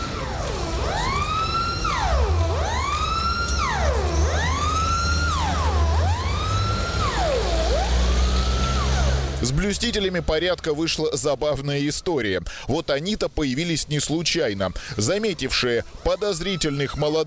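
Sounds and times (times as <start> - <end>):
Soviet militia police siren wailing: 0.0 - 10.9, 15.1 - 17.2
low rumble of street traffic with passing cars: 0.0 - 12.2
speech: 9.7 - 17.2.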